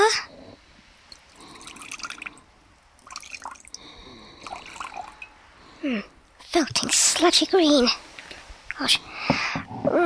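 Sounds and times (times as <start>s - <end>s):
liquid poured from a bottle into a jar: 1.1s - 6.9s
speech: 5.9s - 8.0s, 8.8s - 9.1s.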